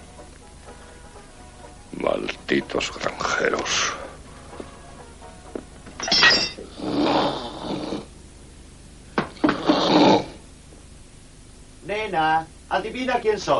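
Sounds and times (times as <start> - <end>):
speech: 2.0 - 4.0, 12.2 - 13.5
man snoring loudly in bed: 6.7 - 8.1, 9.4 - 10.4.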